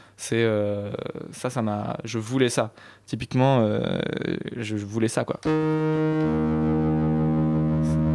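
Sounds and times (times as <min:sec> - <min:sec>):
speech: 0:00.2 - 0:06.9
rich sustained musical note with dense harmonics and faint distorted buzz: 0:05.4 - 0:08.1.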